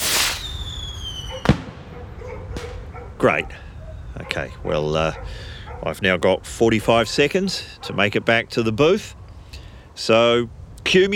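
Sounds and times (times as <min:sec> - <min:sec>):
rushing firework launch: 0:00.0 - 0:02.0
firework bang: 0:00.0 - 0:02.9
speech: 0:03.2 - 0:09.2, 0:10.0 - 0:11.1.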